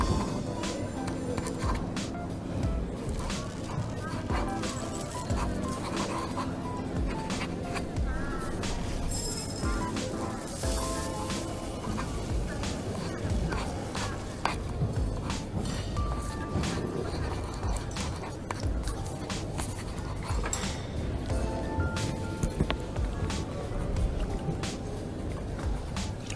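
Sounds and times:
voices in a coffee shop: 0:00.0 - 0:26.3
cutlery in a coffee shop: 0:03.0 - 0:21.3.

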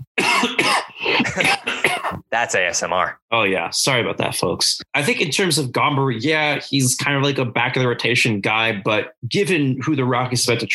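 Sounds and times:
harsh raspy throaty coughs: 0:00.0 - 0:02.3
speech: 0:01.4 - 0:01.7, 0:02.4 - 0:10.7.

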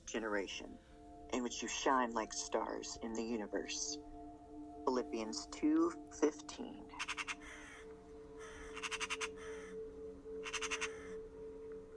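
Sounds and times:
speech: 0:00.1 - 0:04.1, 0:04.9 - 0:07.3
raven cawing while flying by and landing on a branch: 0:07.0 - 0:11.2.

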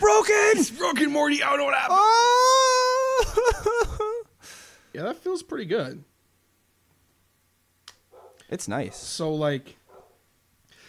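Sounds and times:
speech: 0:00.5 - 0:02.5, 0:05.0 - 0:06.1, 0:08.5 - 0:09.8
laughter: 0:03.0 - 0:04.3
dog barking: 0:08.1 - 0:09.2, 0:09.8 - 0:10.3.

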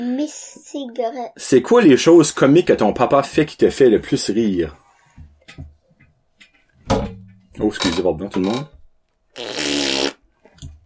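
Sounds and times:
speech: 0:00.0 - 0:04.8, 0:06.9 - 0:08.8
fart: 0:09.3 - 0:10.2.

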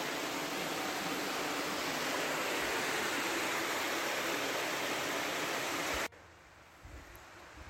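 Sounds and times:
running water: 0:00.0 - 0:06.1.

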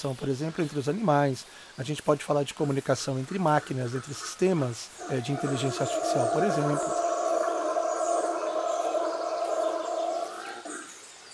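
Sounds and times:
speech: 0:00.0 - 0:07.0
male howler monkey roaring: 0:05.0 - 0:11.0.

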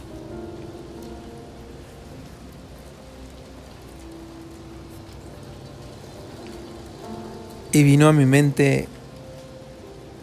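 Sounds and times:
heavy rain spattering on surfaces: 0:00.0 - 0:10.2
speech: 0:07.8 - 0:09.0.

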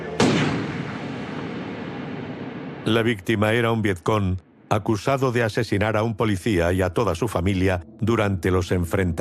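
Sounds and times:
pistol gunshot during the Vietnam War: 0:00.2 - 0:02.9
speech: 0:02.9 - 0:09.1.

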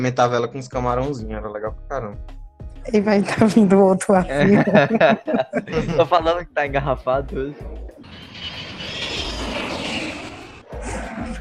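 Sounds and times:
speech: 0:00.0 - 0:07.8
laughter: 0:04.3 - 0:08.0
airplane roaring overhead: 0:08.0 - 0:11.0.

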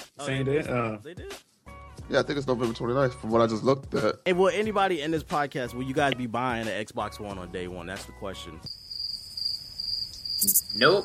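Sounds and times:
speech: 0:00.2 - 0:01.5, 0:02.1 - 0:08.8, 0:10.4 - 0:11.0
cricket trill: 0:08.7 - 0:11.0.

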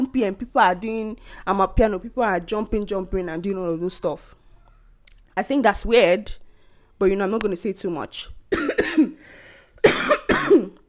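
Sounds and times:
speech: 0:00.0 - 0:04.4, 0:05.4 - 0:06.4, 0:07.0 - 0:08.4
harsh coughs: 0:08.5 - 0:09.2, 0:09.8 - 0:10.8.

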